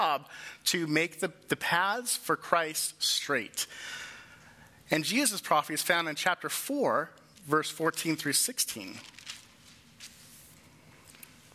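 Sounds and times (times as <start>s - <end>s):
speech: 0.0s - 4.1s, 4.9s - 9.2s
Bible pages rustling as people turn them: 8.7s - 11.5s.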